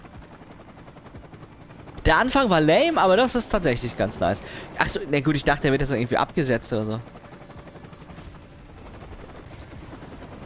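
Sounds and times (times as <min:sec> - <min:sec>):
video game helicopter flying past with rotor chopping: 0:00.0 - 0:10.4
speech: 0:02.0 - 0:07.2.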